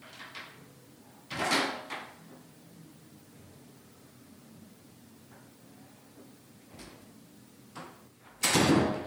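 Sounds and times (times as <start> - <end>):
low hiss: 0.0 - 8.6
bathroom door slamming shut: 8.4 - 9.0.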